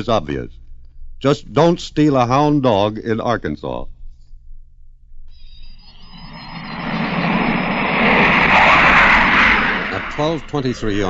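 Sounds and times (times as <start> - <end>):
speech: 0.0 - 0.6, 1.2 - 4.0, 10.2 - 11.0
twin-jet British Canberra bomber roaring at over 500 mph off the coast of Ireland: 5.4 - 11.0.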